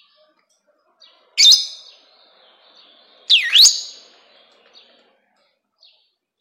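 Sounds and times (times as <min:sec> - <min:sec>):
rosy-faced lovebird screeching: 0:01.4 - 0:01.9, 0:03.3 - 0:04.1.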